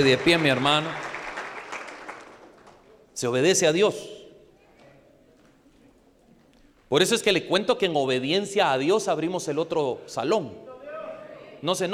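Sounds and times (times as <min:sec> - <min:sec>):
speech: 0:00.0 - 0:01.1, 0:03.2 - 0:04.2, 0:06.9 - 0:10.7, 0:11.6 - 0:11.9
audience applauding: 0:00.0 - 0:03.1.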